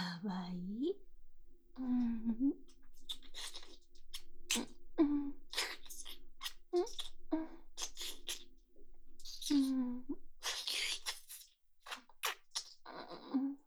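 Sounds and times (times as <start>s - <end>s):
deep kissing: 0.5s - 13.3s.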